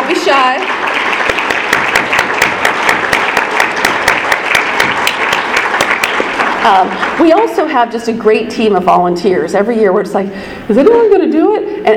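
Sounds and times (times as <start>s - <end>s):
room full of people clapping: 0.0s - 7.6s
speech: 0.1s - 1.2s, 6.6s - 11.9s.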